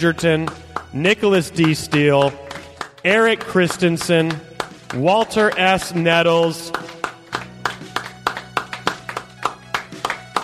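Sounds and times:
speech: 0.0 - 2.4, 3.0 - 6.9
audience clapping: 0.0 - 10.4.

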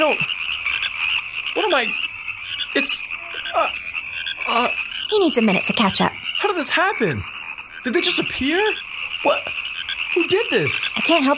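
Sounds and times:
speech: 0.0 - 0.4, 1.6 - 2.1, 2.8 - 3.9, 4.5 - 11.3
dense chorus of frogs croaking: 0.0 - 11.3.

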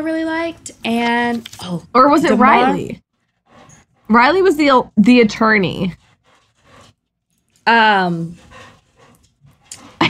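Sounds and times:
speech: 0.0 - 3.0, 4.1 - 6.0, 7.7 - 8.5
dog panting: 2.2 - 7.0, 7.8 - 10.0.

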